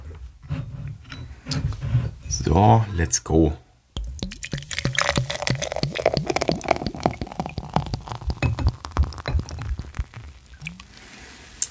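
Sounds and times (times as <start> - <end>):
speech: 2.4 - 3.6
foaming drink poured into a glass in a room: 4.2 - 11.6.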